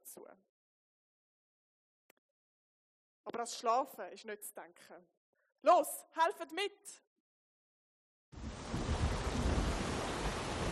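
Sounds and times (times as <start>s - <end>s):
speech: 0.2s - 0.5s, 3.3s - 7.1s
strong wind roaring over open sea: 8.4s - 10.7s.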